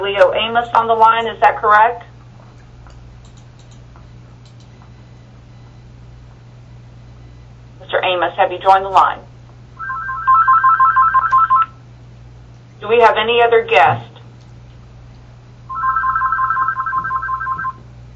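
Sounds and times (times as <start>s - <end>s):
speech: 0.0s - 2.1s, 8.4s - 9.3s, 12.8s - 14.1s
low hum: 0.0s - 18.1s
phone electronic ringtone on the line of a phone-in meeting: 9.8s - 11.7s, 15.7s - 17.8s.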